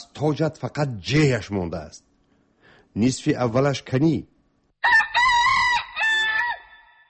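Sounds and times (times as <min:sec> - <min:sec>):
speech: 0:00.0 - 0:02.1, 0:02.9 - 0:05.0
rooster crowing: 0:04.8 - 0:07.0.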